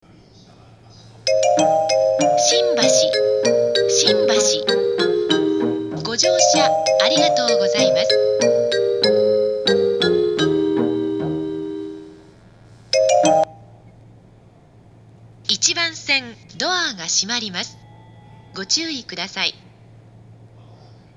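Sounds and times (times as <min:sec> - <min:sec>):
train approach announcement on Yokosuka Line platform: 0:01.0 - 0:12.4, 0:15.4 - 0:20.5
train departure melody on Yokosuka Line platform 1: 0:01.2 - 0:14.3, 0:17.6 - 0:20.5.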